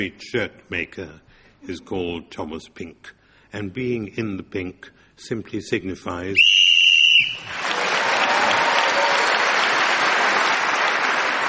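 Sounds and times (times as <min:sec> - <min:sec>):
speech: 0:00.0 - 0:06.7
shrill whistle blast blown to end a round of a game: 0:06.4 - 0:07.6
loud sustained audience applause: 0:07.2 - 0:11.4.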